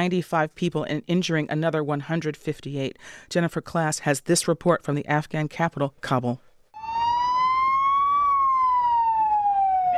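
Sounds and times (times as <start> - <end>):
speech: 0.0 - 6.5
ambulance emergency siren wailing: 6.8 - 9.9.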